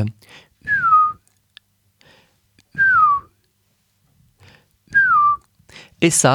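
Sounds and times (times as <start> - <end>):
speech: 0.0 - 0.8, 6.0 - 6.3
person whistling imitation of two-note melancholy bird song: 0.7 - 1.2, 2.8 - 3.4, 4.9 - 5.4.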